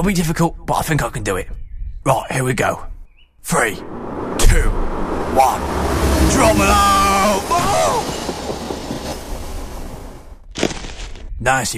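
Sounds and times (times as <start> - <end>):
speech: 0.0 - 4.8, 5.4 - 7.8, 11.4 - 11.7
train roaring past: 3.5 - 10.4
train wheels clacking rhythmically: 6.4 - 10.2.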